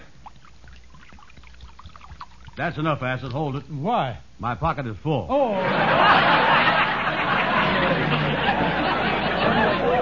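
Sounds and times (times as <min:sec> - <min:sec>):
liquid glugging out of a jug: 0:00.0 - 0:03.5
speech: 0:02.6 - 0:06.7
laughter: 0:05.6 - 0:10.0.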